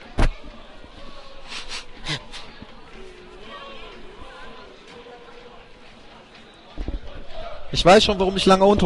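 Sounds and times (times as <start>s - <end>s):
outdoor crowd murmur: 0.0s - 8.8s
person blowing nose: 1.5s - 2.5s
speech: 7.7s - 8.8s.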